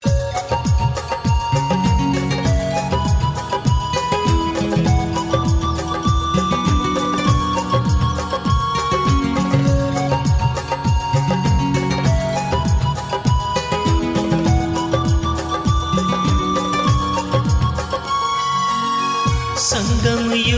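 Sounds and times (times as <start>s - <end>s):
Marathi ringtone: 0.0s - 20.4s.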